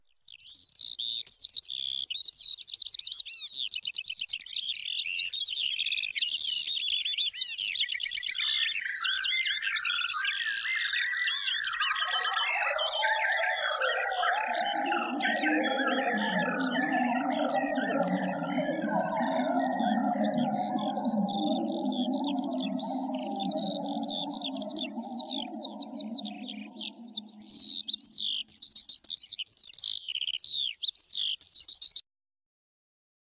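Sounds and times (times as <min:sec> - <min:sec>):
lark singing: 0:00.4 - 0:32.0.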